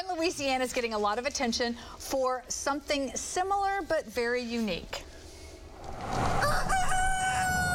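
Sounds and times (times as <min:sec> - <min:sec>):
speech: 0:00.0 - 0:05.1
steady hum: 0:00.0 - 0:07.7
rooster crowing at a fried-chicken restaurant in Louisiana: 0:06.4 - 0:07.7.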